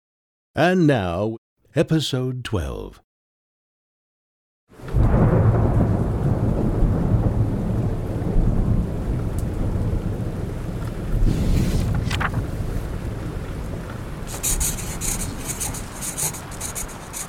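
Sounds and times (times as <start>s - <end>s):
speech: 0.6s - 3.0s
deep rumbling thunder: 4.8s - 11.6s, 12.3s - 14.3s
heavy rain pouring at the start of the rainy season: 4.8s - 17.2s.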